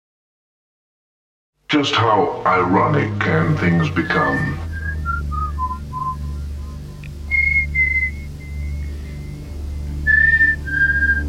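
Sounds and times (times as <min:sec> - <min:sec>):
speech: 0:01.7 - 0:04.6
steady low engine-like hum: 0:02.4 - 0:11.2
person whistling a simple melody: 0:04.4 - 0:09.4, 0:10.0 - 0:11.2.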